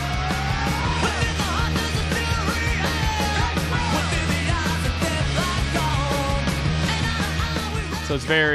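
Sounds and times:
raw screamed vocals in punk rock track: 0:00.0 - 0:04.0
distorted guitars in punk rock track: 0:00.0 - 0:08.5
super simple driving drums in punk rock track: 0:00.0 - 0:08.5
speech: 0:08.1 - 0:08.5.

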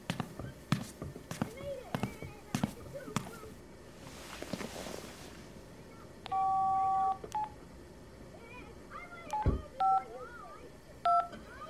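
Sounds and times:
soft rustling: 0:00.1 - 0:05.8
telephone keypad tones on speakerphone: 0:06.3 - 0:07.6, 0:09.3 - 0:10.0, 0:11.1 - 0:11.4.

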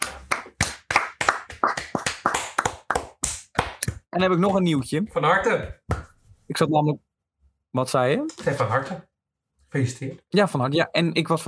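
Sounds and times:
hands clapping in applause: 0:00.0 - 0:04.7
speech: 0:04.2 - 0:05.9, 0:06.5 - 0:07.1, 0:07.7 - 0:09.1, 0:09.7 - 0:11.4.

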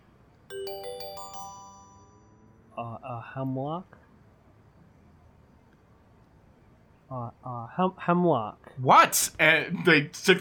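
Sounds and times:
doorbell chiming bright ringing tones: 0:00.5 - 0:02.7
speech: 0:03.2 - 0:04.0, 0:07.1 - 0:10.3.

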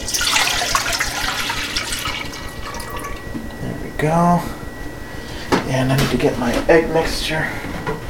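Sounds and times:
milk pouring into a pot: 0:00.0 - 0:03.3
speech: 0:04.0 - 0:04.6, 0:05.7 - 0:08.0.

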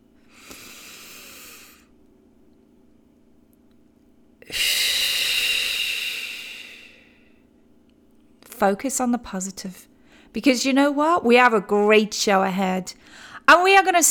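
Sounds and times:
deep breathing: 0:00.2 - 0:01.9, 0:04.4 - 0:07.5, 0:13.0 - 0:13.4
speech: 0:08.6 - 0:14.0.

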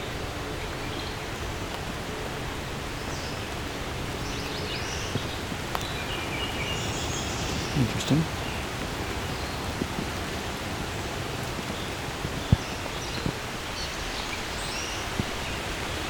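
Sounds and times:
steady rain pattering on foliage: 0:00.0 - 0:16.0
water drips: 0:03.4 - 0:15.7
speech: 0:07.8 - 0:08.4.

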